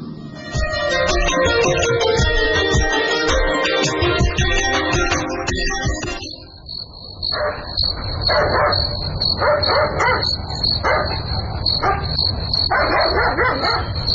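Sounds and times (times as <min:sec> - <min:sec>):
steady high-pitched hum: 0:00.1 - 0:06.7
dog barking: 0:07.3 - 0:12.2, 0:12.7 - 0:14.0.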